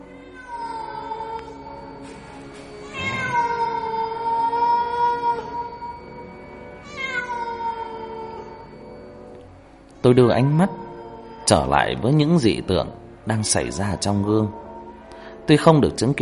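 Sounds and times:
cat meowing: 0.0 - 1.6, 2.8 - 6.1, 6.8 - 8.6, 10.4 - 11.7
speech: 10.1 - 10.8, 11.5 - 14.6, 15.5 - 16.2.

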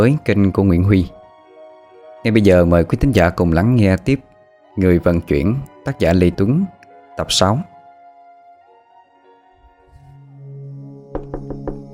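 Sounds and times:
speech: 0.0 - 1.2, 2.2 - 7.7
sustained low musical drone: 0.0 - 11.9
sharp knocks on a room door: 11.1 - 11.9.

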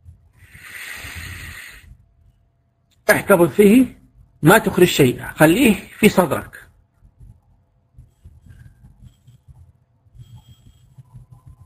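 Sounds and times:
deep breath in during a guided breathing exercise: 0.4 - 2.0
speech: 3.1 - 6.7.

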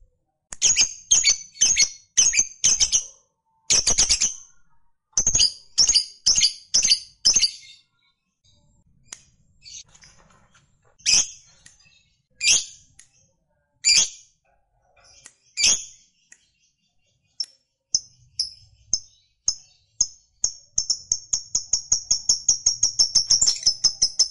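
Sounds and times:
lovebird sharp high chirps: 0.6 - 24.3.

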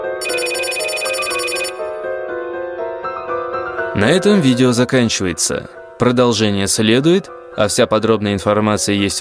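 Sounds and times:
shrill high buzzing: 0.2 - 1.9
electronic telephone ringtone melody: 0.2 - 2.0
speech: 4.0 - 9.2.

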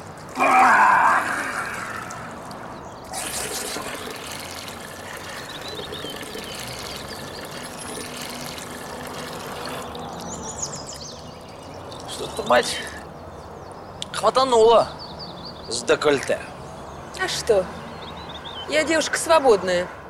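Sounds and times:
water poured from an iron ladle for washing: 0.0 - 12.8
speech: 12.5 - 12.9, 14.2 - 15.0, 15.7 - 16.5, 17.2 - 17.8, 18.7 - 20.0.

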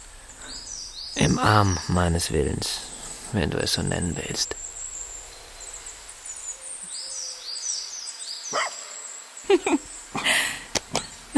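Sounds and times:
faint high bird calls: 0.0 - 11.3
speech: 1.2 - 4.6
dog barking: 8.5 - 8.9.

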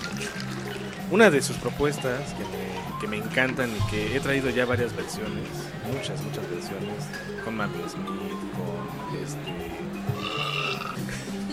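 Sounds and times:
steady tonal background: 0.0 - 11.5
speech: 1.1 - 11.2
low rumbling burp: 10.1 - 11.2.

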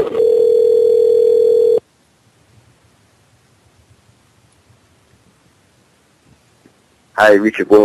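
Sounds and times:
telephone dial tone after call disconnects: 0.0 - 1.8
speech: 7.2 - 7.8.

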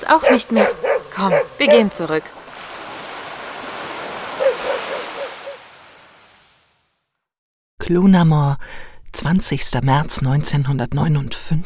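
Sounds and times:
speech: 0.1 - 2.4, 7.9 - 11.6
ocean surf washing in: 0.5 - 7.0.

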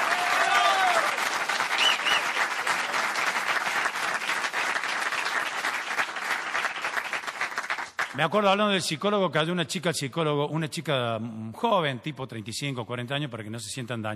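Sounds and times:
audience applause at a stand-up comedy show: 0.0 - 8.2
speech: 8.2 - 14.1.

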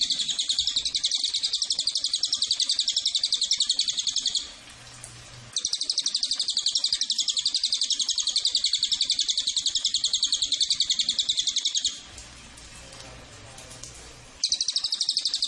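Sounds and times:
cililin singing a rapid trill of high buzzy notes: 0.0 - 4.6, 5.5 - 12.1, 14.4 - 15.4.

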